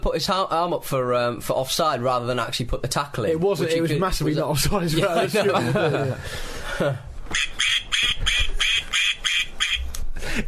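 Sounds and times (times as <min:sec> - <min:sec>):
speech: 0:00.0 - 0:05.7
laughter: 0:05.0 - 0:07.0
duck quacking loudly: 0:07.3 - 0:09.9.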